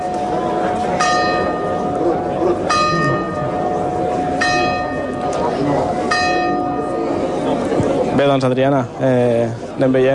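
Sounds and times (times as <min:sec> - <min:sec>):
church tower bell tolling during a town fair: 0:00.0 - 0:07.6
crowd murmur at a town fair: 0:00.0 - 0:10.1
outdoor bustle at a town fair: 0:00.0 - 0:10.1
speech: 0:08.3 - 0:10.1.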